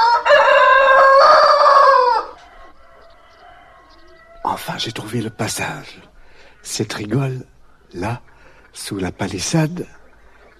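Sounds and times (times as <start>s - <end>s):
rooster crowing: 0.0s - 5.8s
faint noise: 0.0s - 10.5s
speech: 4.7s - 10.0s.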